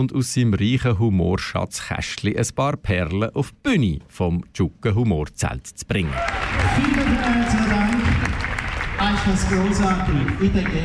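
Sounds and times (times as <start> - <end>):
speech: 0.0 - 7.6, 9.1 - 10.8
crowd applause for performer entering stage: 6.0 - 10.8.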